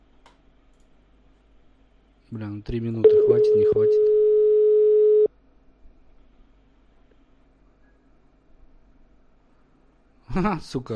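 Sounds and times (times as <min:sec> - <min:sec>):
speech: 0:02.3 - 0:04.2, 0:10.4 - 0:10.9
steady mid-pitched telephone tone while a call is dialed: 0:03.1 - 0:05.3.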